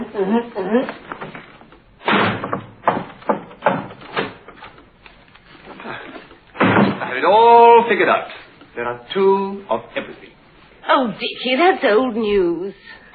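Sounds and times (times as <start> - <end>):
speech: 0.1 - 1.1, 7.9 - 10.3, 10.9 - 13.0
door slamming shut: 2.0 - 4.6, 6.5 - 7.2
sharp knocks on a door: 2.4 - 4.0.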